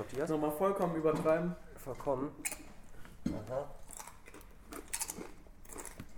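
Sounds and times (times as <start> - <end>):
speech: 0.0 - 2.6, 3.2 - 3.8
crunchy chewing of cheese tortillas: 3.8 - 6.1.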